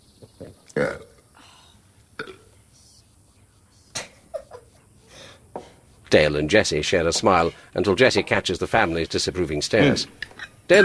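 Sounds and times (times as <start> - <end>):
faint movement: 0.0 - 10.8
speech: 0.8 - 1.1, 6.1 - 10.8
person belching: 0.8 - 1.2, 2.2 - 2.5
mouth and table noises: 2.1 - 10.8.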